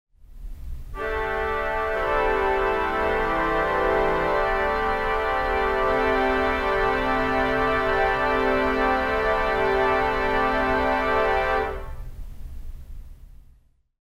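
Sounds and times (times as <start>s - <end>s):
strings: 0.9s - 12.1s
theatre organ: 1.0s - 12.0s.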